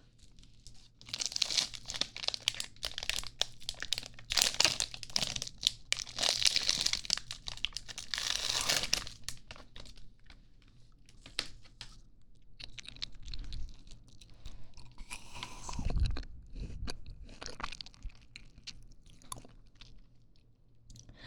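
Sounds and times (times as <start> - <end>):
plastic ice pop wrappers crinkling as torn open: 0.4 - 10.3
biting and wet chewing of ice pops: 0.4 - 10.4, 11.0 - 21.1.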